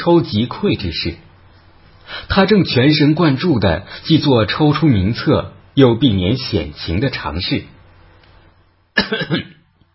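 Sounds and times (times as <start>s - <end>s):
speech: 0.0s - 1.3s, 2.1s - 7.8s, 9.0s - 9.6s
loud forceful cough from a person: 9.0s - 9.7s.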